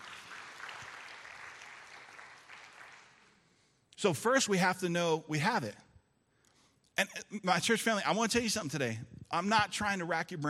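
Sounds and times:
crowd clapping: 0:00.0 - 0:03.5
speech: 0:04.0 - 0:05.8, 0:07.0 - 0:10.4.

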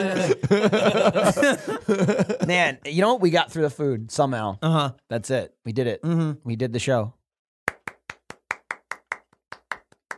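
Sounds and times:
laughter: 0:00.0 - 0:02.8
speech: 0:00.0 - 0:07.2
single pair of hands clapping: 0:07.7 - 0:10.1.

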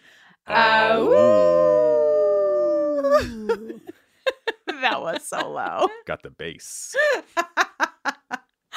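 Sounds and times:
speech: 0:00.5 - 0:01.4, 0:05.1 - 0:07.5
person imitating a wolf howl: 0:00.5 - 0:03.8
laughter: 0:03.0 - 0:06.0, 0:07.0 - 0:08.4.

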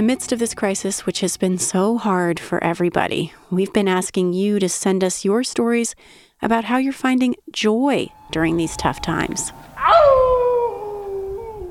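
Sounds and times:
speech: 0:00.0 - 0:10.1
faint rumbling noise: 0:07.8 - 0:11.6
person howling outside on a street for healthcare workers: 0:08.9 - 0:11.6.

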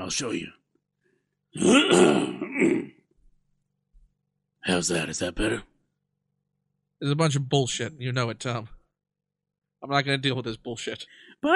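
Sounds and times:
speech: 0:00.1 - 0:00.6, 0:01.5 - 0:03.0, 0:04.6 - 0:05.7, 0:07.0 - 0:08.8, 0:09.8 - 0:11.5
loud guttural throat clearing: 0:01.6 - 0:03.0.

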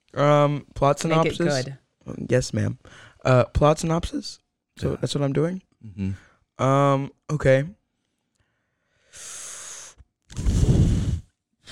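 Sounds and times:
speech: 0:00.2 - 0:07.8
loud breaths blown straight into the microphone: 0:09.0 - 0:11.7.

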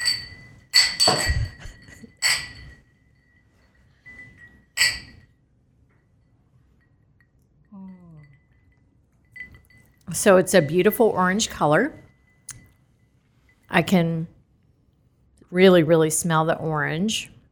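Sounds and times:
cocktail glasses clinking in a toast: 0:00.0 - 0:05.3, 0:06.8 - 0:10.8
speech: 0:10.1 - 0:12.0, 0:13.8 - 0:14.4, 0:15.5 - 0:17.4.

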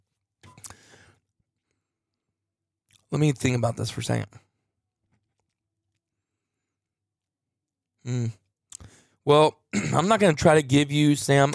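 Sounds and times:
person sipping an energy drink: 0:00.5 - 0:00.8
speech: 0:03.1 - 0:04.5, 0:08.1 - 0:08.4, 0:09.2 - 0:11.5.

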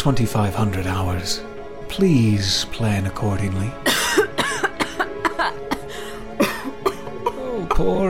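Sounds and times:
speech: 0:00.0 - 0:04.0, 0:07.8 - 0:08.0
short dry coughs: 0:03.8 - 0:07.9.

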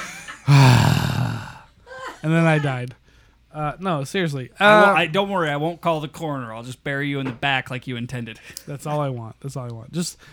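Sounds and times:
exasperated gasp: 0:00.5 - 0:01.6
speech: 0:02.2 - 0:10.3.

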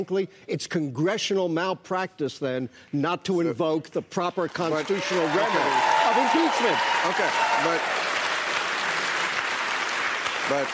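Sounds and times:
speech: 0:00.0 - 0:08.0, 0:10.5 - 0:10.7
audience applause at a live event in Los Angeles: 0:04.6 - 0:10.7.

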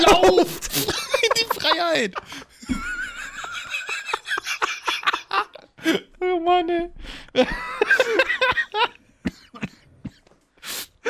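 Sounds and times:
laughter: 0:00.0 - 0:06.0, 0:07.4 - 0:09.0
speech: 0:01.7 - 0:02.9, 0:05.8 - 0:07.8
throaty coughs: 0:09.2 - 0:10.3.

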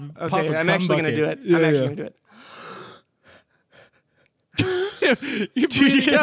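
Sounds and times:
speech: 0:00.0 - 0:02.6, 0:04.6 - 0:06.2
deep breathing with airy breath bursts: 0:02.3 - 0:05.6.

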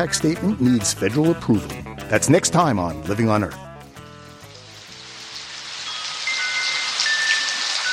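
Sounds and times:
speech: 0:00.0 - 0:03.6
steady dense rain from a midnight rainstorm in California: 0:04.5 - 0:07.9.

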